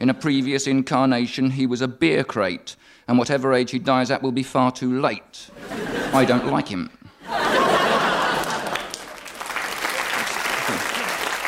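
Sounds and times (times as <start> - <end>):
speech: 0.0 - 7.7
laughter: 5.5 - 11.4
live audience clapping: 7.6 - 11.4.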